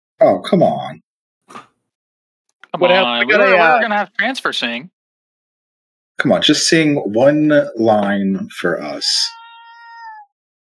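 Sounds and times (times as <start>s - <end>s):
speech: 0.2s - 1.7s, 2.8s - 5.0s, 6.2s - 9.4s
cat meowing: 9.1s - 10.4s.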